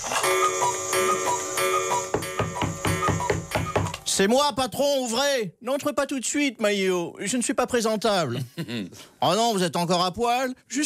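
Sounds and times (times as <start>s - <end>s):
sustained tonal hum: 0.0s - 3.4s
pendulum clock ticking: 0.2s - 3.6s
speech: 4.2s - 10.8s.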